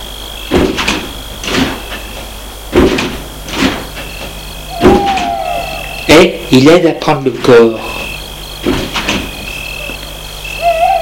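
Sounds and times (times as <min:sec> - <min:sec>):
faint steady high whine of insects: 0:00.0 - 0:11.0
car doors opening and closing in front of a villa: 0:00.5 - 0:06.1, 0:07.4 - 0:10.0
speech: 0:06.1 - 0:08.8.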